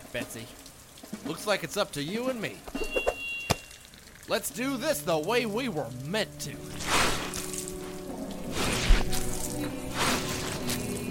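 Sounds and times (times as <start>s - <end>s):
speech: 0.1s - 0.6s, 1.2s - 3.1s, 4.3s - 7.0s
shoveling wet sewage: 6.6s - 11.0s.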